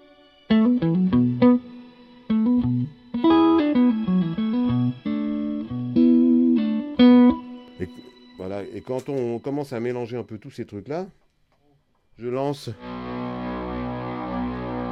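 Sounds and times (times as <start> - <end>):
electric guitar phrases through a shimmer reverb with octave-up layer: 0.0 - 8.8, 12.8 - 14.9
speech: 8.8 - 11.2, 12.2 - 13.0.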